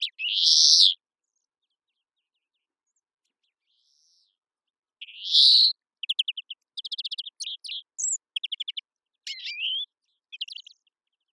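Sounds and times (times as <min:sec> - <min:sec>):
European greenfinch Chloris chloris singing: 0:00.0 - 0:01.0, 0:05.0 - 0:10.8.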